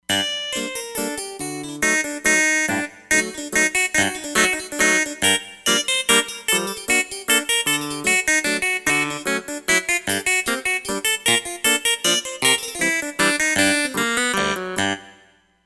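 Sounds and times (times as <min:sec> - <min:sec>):
harpsichord: 0:00.1 - 0:15.1.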